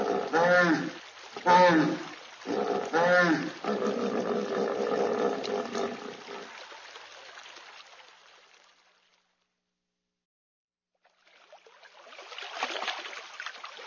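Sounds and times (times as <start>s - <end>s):
hippopotamus loud deep grunting roars: 0.0s - 6.5s
hippopotamus rumbling wet-sounding bellow: 0.0s - 7.4s.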